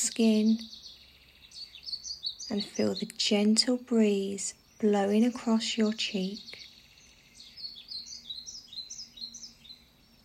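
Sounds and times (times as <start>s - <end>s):
several birds chirping and trilling in a forest: 0.0s - 10.2s
speech: 0.2s - 0.8s, 2.5s - 6.6s.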